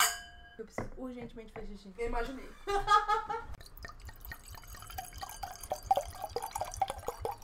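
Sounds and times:
speech: 0.6s - 3.7s
laughter: 2.6s - 3.5s
water pouring into a glass: 3.6s - 7.4s.

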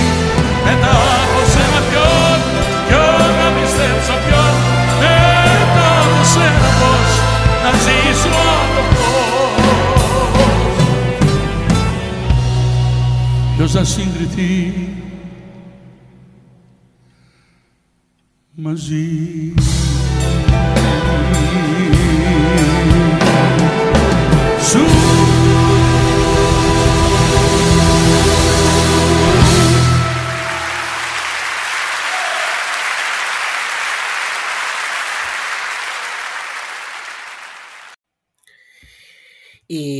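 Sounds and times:
live concert music at the Megaron concert hall in Athens: 0.0s - 16.5s, 19.6s - 38.0s
speech: 13.7s - 15.1s, 18.6s - 19.7s
audience applause: 28.8s - 38.0s.

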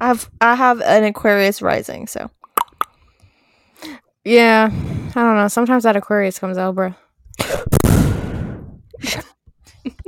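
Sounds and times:
speech: 0.0s - 2.4s, 3.8s - 7.8s, 9.0s - 10.0s
mouth sounds: 2.4s - 3.0s
heavy breathing into the microphone: 2.9s - 4.0s, 4.7s - 5.2s.

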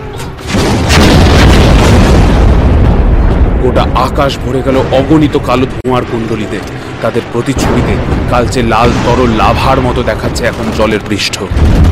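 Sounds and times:
many anti-aircraft cannons firing at approaching warplanes: 0.3s - 3.9s, 7.6s - 11.9s
speech: 3.6s - 11.9s.

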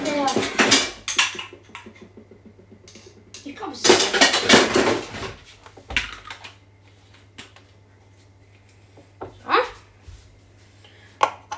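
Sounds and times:
blender attachments clattering and knocking together: 0.0s - 5.4s.

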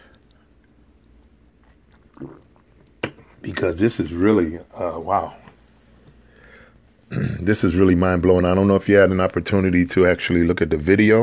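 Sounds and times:
soft gulp of water: 1.6s - 3.0s
wet mouth clicks while sipping water: 1.6s - 3.0s
speech: 3.4s - 5.4s, 7.1s - 11.2s.

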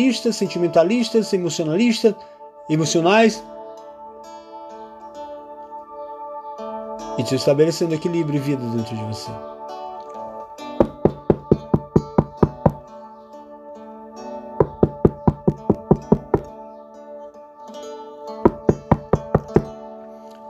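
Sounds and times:
speech: 0.0s - 3.5s, 7.2s - 9.6s
soft sustained musical tone: 0.0s - 10.8s, 12.8s - 14.6s, 16.5s - 18.9s, 19.6s - 20.4s
rapid knocking on a door: 10.8s - 12.8s, 14.6s - 16.5s, 18.5s - 19.7s.

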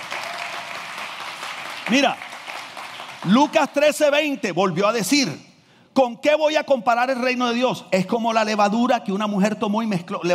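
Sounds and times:
crowd applauding: 0.0s - 3.8s
speech: 1.9s - 2.3s, 3.2s - 10.3s.

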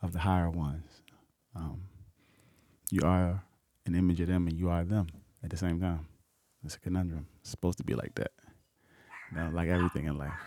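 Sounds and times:
speech: 0.1s - 1.0s, 1.6s - 1.9s, 2.9s - 8.4s, 9.3s - 10.4s
dog growling and barking: 9.1s - 10.4s.

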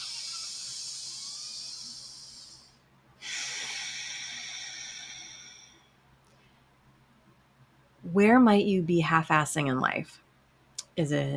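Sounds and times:
breathing in and out through the nose: 0.0s - 5.9s
speech: 8.1s - 10.2s, 11.0s - 11.3s.

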